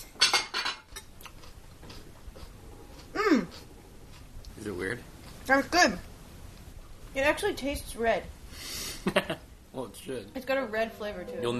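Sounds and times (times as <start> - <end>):
utensils clinking against dishes as soup and salad are served into bowls and plates: 0.0 - 1.1
speech: 4.6 - 6.1, 7.1 - 11.5.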